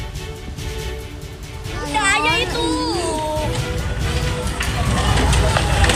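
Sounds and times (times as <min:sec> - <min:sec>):
fire in a canteen and spare-parts warehouse roaring and crackling: 0:00.2 - 0:05.9
panicking residents shouting in alarm: 0:01.7 - 0:05.9.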